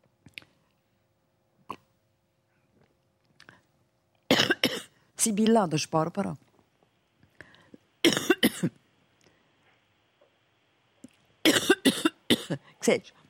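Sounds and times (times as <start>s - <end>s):
person coughing after choking on water: 4.3s - 5.0s, 8.0s - 8.8s, 11.4s - 12.7s
speech: 5.2s - 6.5s, 12.8s - 13.2s.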